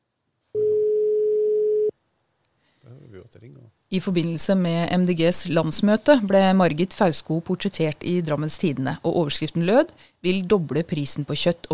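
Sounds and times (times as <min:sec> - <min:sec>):
telephone tone while a call is placed: 0:00.6 - 0:01.9
speech: 0:03.3 - 0:11.7.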